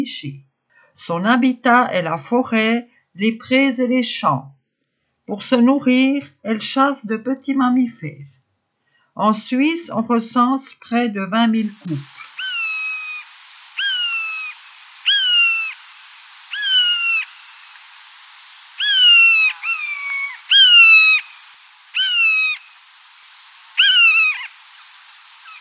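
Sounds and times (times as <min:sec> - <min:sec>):
speech: 0:00.0 - 0:04.6, 0:05.3 - 0:08.4, 0:09.2 - 0:12.2
common buzzard mewing: 0:11.6 - 0:25.5.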